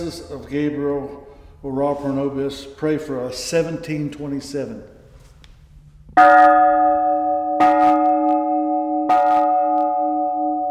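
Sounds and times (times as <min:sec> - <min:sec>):
speech: 0:00.0 - 0:05.0, 0:06.2 - 0:07.0
large old bronze church bell ringing: 0:06.2 - 0:10.6.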